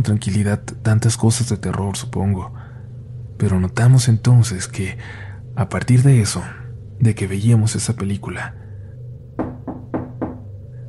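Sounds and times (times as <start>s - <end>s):
speech: 0.0s - 2.7s, 3.4s - 8.6s
quiet low hum: 1.5s - 10.8s
firm knocking on a door: 9.4s - 10.6s.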